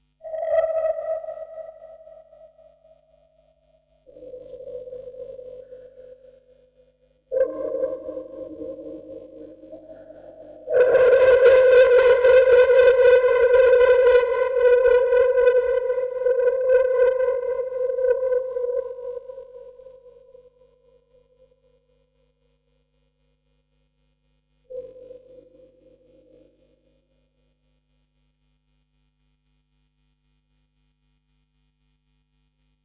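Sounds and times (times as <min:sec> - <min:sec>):
vocoder: 0:07.4 - 0:19.3.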